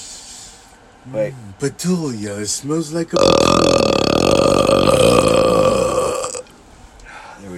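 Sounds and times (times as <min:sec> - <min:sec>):
speech: 0:01.0 - 0:05.5
loud drawn-out human burp: 0:03.2 - 0:06.5.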